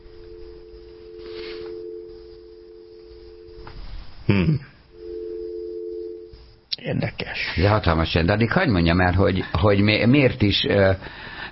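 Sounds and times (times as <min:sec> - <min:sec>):
steady electronic telephone tone on the line while dialing: 0:00.0 - 0:03.7, 0:04.9 - 0:06.4
speech: 0:04.3 - 0:04.7, 0:06.9 - 0:11.5.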